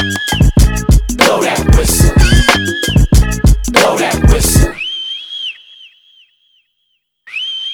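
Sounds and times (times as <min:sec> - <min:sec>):
high shrill whistle being blown: 0:00.0 - 0:00.9, 0:02.2 - 0:03.5, 0:04.8 - 0:06.7, 0:07.3 - 0:07.7
thumping music beat: 0:00.0 - 0:04.8.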